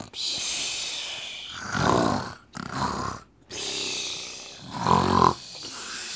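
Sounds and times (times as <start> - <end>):
sleeping poachers snoring: 1.4 - 6.1.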